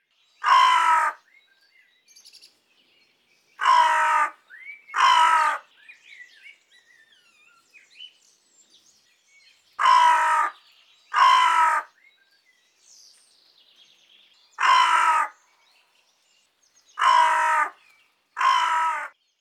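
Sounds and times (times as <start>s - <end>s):
hooded crow Corvus cornix calling: 0.4s - 1.3s, 3.6s - 5.7s, 9.8s - 12.1s, 14.6s - 15.4s, 17.0s - 19.2s.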